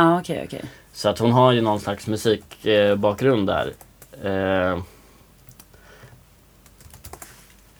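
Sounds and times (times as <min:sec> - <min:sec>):
speech: 0:00.0 - 0:04.9
typing on a computer keyboard: 0:02.3 - 0:04.4, 0:05.4 - 0:07.6.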